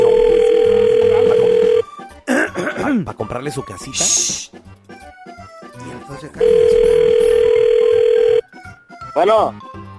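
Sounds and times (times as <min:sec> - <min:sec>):
person talking over a faint phone line: 0:00.0 - 0:01.8, 0:06.4 - 0:08.4
electronic ringback tone from an outgoing phone call: 0:00.0 - 0:01.9, 0:06.4 - 0:08.4
speech: 0:03.0 - 0:04.6, 0:06.1 - 0:07.1, 0:09.2 - 0:09.7.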